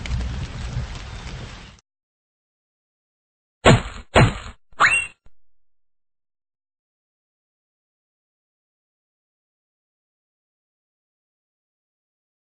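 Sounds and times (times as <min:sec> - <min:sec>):
rain falling: 0:00.0 - 0:01.8
sharp loud thwacks: 0:03.6 - 0:04.6.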